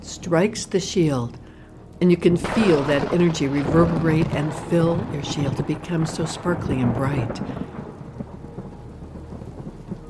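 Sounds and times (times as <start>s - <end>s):
steady rain of a thunderstorm: 0.0s - 10.0s
speech: 0.2s - 1.4s, 2.0s - 7.8s
deep rumbling thunder of a thunderstorm: 2.4s - 10.0s.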